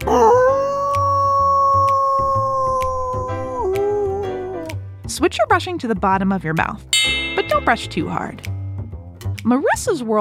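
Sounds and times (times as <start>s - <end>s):
person imitating a dog's howl: 0.1s - 4.7s
speech: 5.2s - 8.5s, 9.4s - 10.1s
quiet rhythmic beat: 7.0s - 8.3s.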